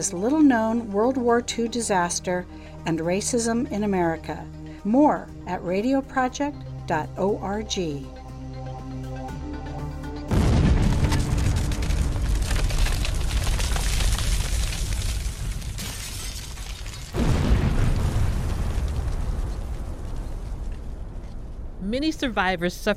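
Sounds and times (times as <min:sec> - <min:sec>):
speech: 0:00.0 - 0:08.2, 0:22.0 - 0:22.9
heavy blast: 0:10.3 - 0:14.2, 0:17.2 - 0:22.2
large explosion boom: 0:10.3 - 0:15.8, 0:17.1 - 0:21.8
crackling debris: 0:10.3 - 0:22.2.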